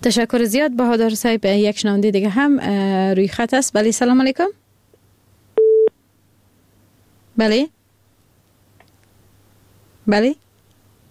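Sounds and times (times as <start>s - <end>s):
speech: 0.0s - 4.6s, 7.4s - 7.8s, 10.1s - 10.4s
telephone beep as a call-in line disconnects: 5.6s - 5.9s.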